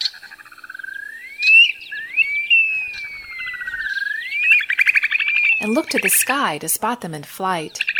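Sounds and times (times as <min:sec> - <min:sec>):
upland sandpiper wolf whistle call: 0:01.0 - 0:05.7
speech: 0:05.6 - 0:07.9.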